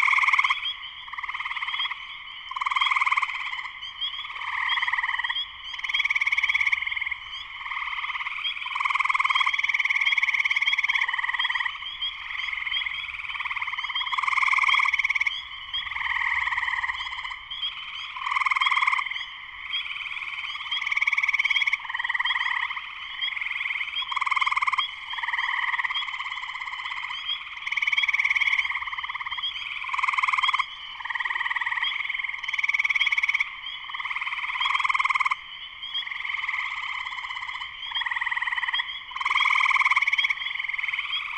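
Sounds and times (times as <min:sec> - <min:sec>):
spring peepers calling in a dense chorus: 0:00.0 - 0:41.3.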